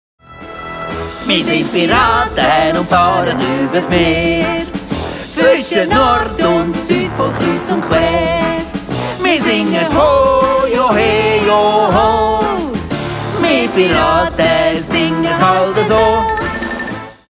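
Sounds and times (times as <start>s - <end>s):
cartoon song: 1.2s - 17.3s.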